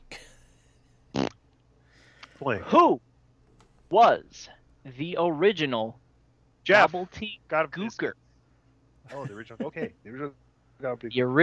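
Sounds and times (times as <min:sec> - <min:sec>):
fart sound effect: 0:01.2 - 0:01.4
speech: 0:02.4 - 0:03.1, 0:03.9 - 0:06.0, 0:06.6 - 0:08.2, 0:09.0 - 0:11.4
laughter: 0:09.1 - 0:10.2.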